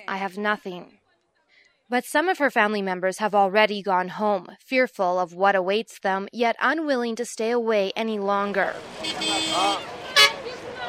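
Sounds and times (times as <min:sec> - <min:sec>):
speech: 0:00.1 - 0:01.0, 0:01.9 - 0:09.9
engine rumble: 0:08.5 - 0:10.8
vehicle horn tooting at a busy bus station: 0:08.9 - 0:10.8.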